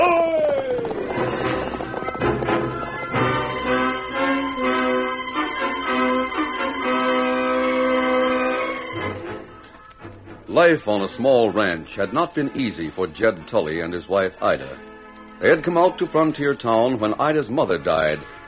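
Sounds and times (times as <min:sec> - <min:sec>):
galloping horse hoofbeats: 0:00.0 - 0:18.4
loud brassy orchestral music: 0:01.0 - 0:18.4
speech: 0:10.6 - 0:18.4.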